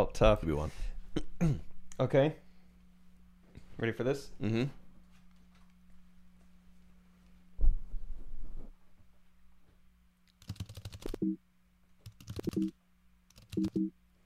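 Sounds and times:
speech: 0.0 - 2.4, 3.8 - 4.8, 11.2 - 11.4, 12.4 - 12.8, 13.6 - 14.0
steady low hum: 0.0 - 14.2
person imitating keyboard typing with their mouth: 10.4 - 11.2, 12.0 - 12.7, 13.3 - 13.9.

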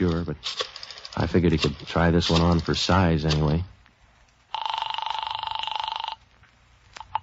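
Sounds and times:
speech: 0.2 - 3.7
telephone bell ringing through a phone line from an office desk phone: 4.5 - 6.2.

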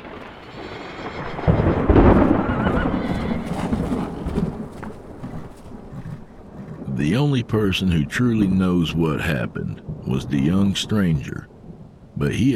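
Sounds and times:
horse hooves clopping: 0.0 - 12.5
steady heavy torrential rain: 0.0 - 12.5
thunder rolling: 0.0 - 12.5
horse whinnying: 0.5 - 7.0
speech: 7.0 - 11.5, 12.2 - 12.5.

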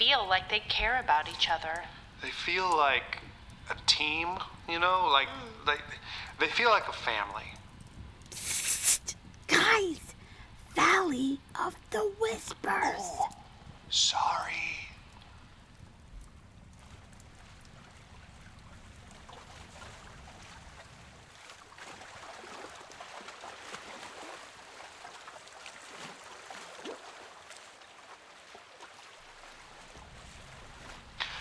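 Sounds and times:
speech: 0.1 - 7.6, 9.6 - 10.0, 10.8 - 14.8
lake water lapping against the shore: 16.8 - 31.3.

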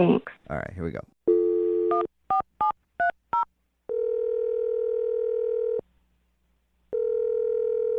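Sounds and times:
speech: 0.0 - 1.2
phone line dial tone: 1.3 - 2.1, 3.9 - 5.8, 6.9 - 7.9.

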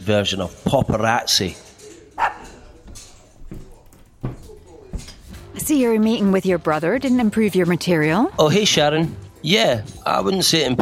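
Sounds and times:
speech: 0.0 - 1.7, 5.7 - 10.8
dog barking: 2.2 - 2.8.

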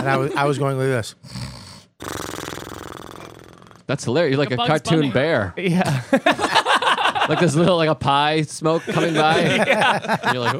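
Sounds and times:
laughter: 0.0 - 0.8, 5.7 - 10.5
speech: 0.0 - 2.2, 3.9 - 6.6, 7.3 - 10.5
man imitating his own snoring with a rattling snort: 1.2 - 3.9.

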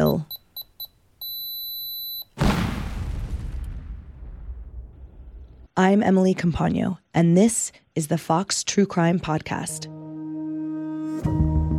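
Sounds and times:
short electronic beep of a pipe bomb: 0.0 - 2.3
loud explosion: 2.4 - 5.7
speech: 5.9 - 10.0, 11.2 - 11.5.

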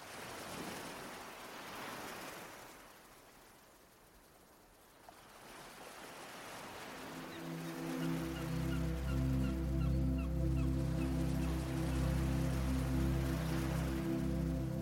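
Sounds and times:
steady low humming drone: 6.9 - 14.7
seagull cries: 7.1 - 12.0.

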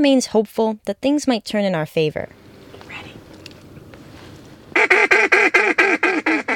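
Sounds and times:
speech: 0.0 - 2.4
mallard duck quacking: 4.7 - 6.5.

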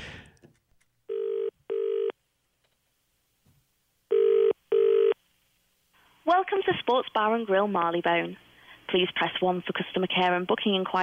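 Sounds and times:
telephone ringing tone over the line: 1.1 - 2.2, 4.1 - 5.2
speech: 6.5 - 11.0.

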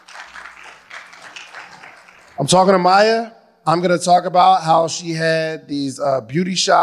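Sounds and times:
audience applause: 0.0 - 2.6
speech: 2.4 - 6.8.

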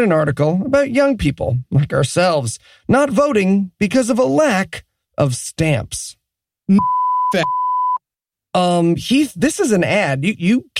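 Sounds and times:
speech: 0.0 - 7.6, 8.5 - 10.7
censor bleep tone: 6.7 - 8.0.

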